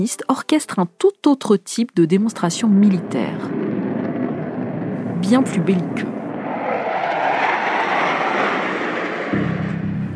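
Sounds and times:
speech: 0.0 - 3.6, 5.2 - 6.1
deep rumble: 2.2 - 10.1
military jet flying overhead: 2.3 - 10.1.

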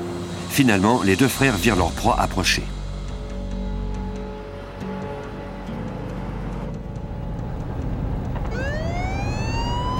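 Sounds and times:
engine drone: 0.0 - 9.9
steady traffic rumble: 0.0 - 9.9
speech: 0.6 - 2.8
police car siren wailing: 8.5 - 9.9.

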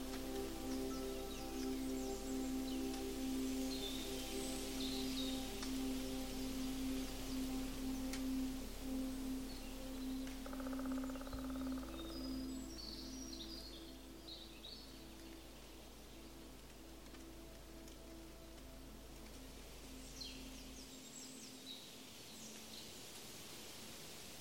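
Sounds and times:
deep rumble: 0.0 - 20.9
sustained droning tones: 0.0 - 21.5
steady low hum in a forest: 0.0 - 21.9.

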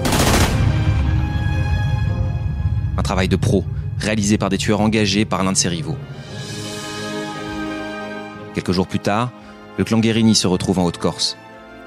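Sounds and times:
burst of rapid gunfire from a motorcycle at a service station: 0.0 - 0.9
low rumble: 0.2 - 6.6
speech: 3.0 - 6.2, 8.6 - 11.4.

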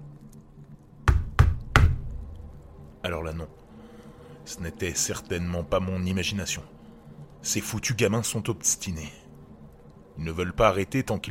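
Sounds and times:
knocking on a house window: 1.0 - 2.2
speech: 3.0 - 3.6, 4.5 - 6.8, 7.4 - 9.2, 10.2 - 11.2.

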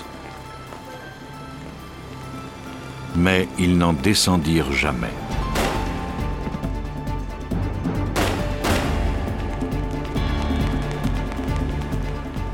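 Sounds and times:
tense musical drone: 0.0 - 12.5
speech: 3.1 - 5.3
gunshots in an apartment building: 5.5 - 6.1, 8.1 - 9.2.

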